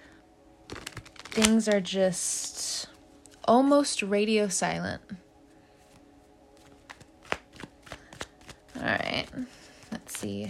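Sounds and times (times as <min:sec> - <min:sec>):
playing cards being shuffled for a card reading: 0:00.7 - 0:01.8, 0:05.9 - 0:10.4
speech: 0:01.4 - 0:02.9, 0:03.5 - 0:05.2.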